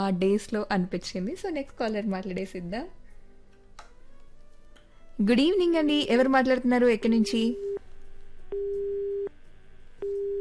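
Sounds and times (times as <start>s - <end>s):
speech: 0.0s - 3.0s, 5.2s - 7.7s
telephone busy tone after a call to a radio phone-in cuts off: 8.5s - 9.3s, 10.0s - 10.3s.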